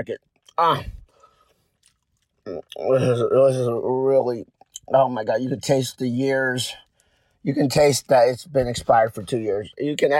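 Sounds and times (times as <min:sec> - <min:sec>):
speech: 0:00.0 - 0:01.0, 0:02.4 - 0:06.8, 0:07.4 - 0:10.1
chewing a bite of an expired candy bar: 0:00.2 - 0:03.3, 0:04.1 - 0:04.9, 0:06.7 - 0:07.5.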